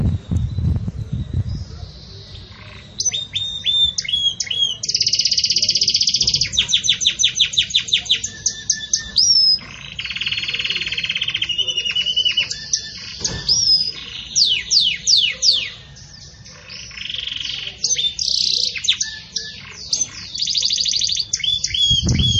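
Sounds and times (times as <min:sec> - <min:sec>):
Belgian canary singing campainha song with chips, rattles and trills: 0:00.0 - 0:22.3.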